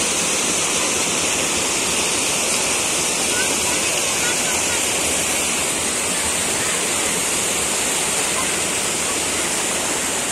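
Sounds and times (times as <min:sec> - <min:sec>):
Cibodas waterfall roaring in Indonesia: 0:00.0 - 0:10.3.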